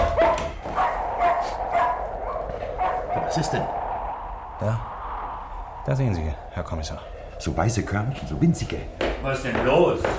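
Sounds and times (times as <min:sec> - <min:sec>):
dog barking: 0:00.0 - 0:03.4
speech: 0:03.4 - 0:03.8, 0:04.6 - 0:04.9, 0:05.8 - 0:10.1.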